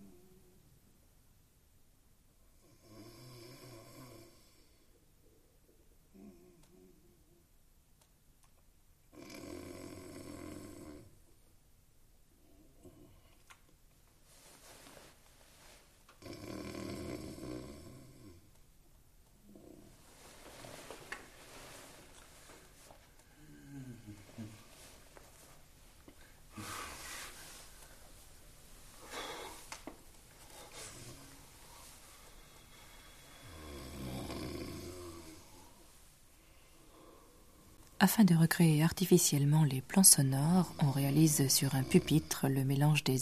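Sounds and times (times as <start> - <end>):
man snoring: 2.7 - 4.7, 9.1 - 11.1, 16.2 - 18.4, 32.7 - 35.8, 41.6 - 42.3
speech: 38.0 - 43.2.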